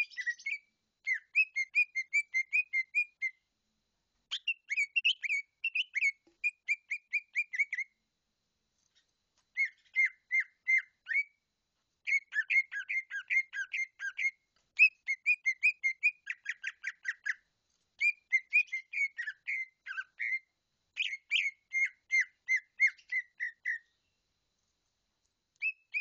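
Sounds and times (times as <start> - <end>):
bird singing bright whistled notes in rapid bursts: 0.0 - 3.4, 4.3 - 8.0, 8.9 - 11.4, 12.0 - 24.2, 25.6 - 25.9.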